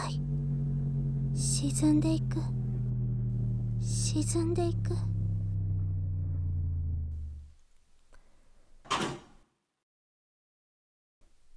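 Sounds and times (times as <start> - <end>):
low mechanical hum: 0.0 - 7.6
speech: 1.6 - 2.6, 4.1 - 5.1
door sliding open with a whoosh: 8.9 - 9.4.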